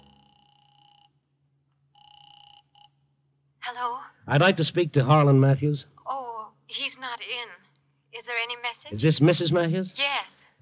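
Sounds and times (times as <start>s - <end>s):
low hum: 0.0s - 1.0s
telephone ringing on the line: 0.0s - 1.2s, 1.9s - 3.1s
speech: 3.7s - 6.0s, 6.7s - 7.6s, 8.2s - 10.4s.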